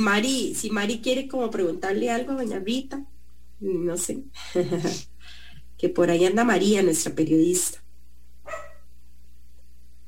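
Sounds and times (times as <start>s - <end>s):
speech: 0.0s - 7.8s
steady low hum: 0.0s - 10.0s
small dog giving a short sharp bark: 8.4s - 8.9s.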